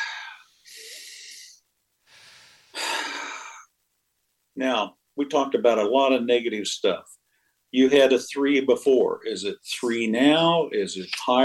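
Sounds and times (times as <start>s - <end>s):
person taking deep breaths during a guided breathing exercise: 0.0s - 3.7s
speech: 4.6s - 11.4s.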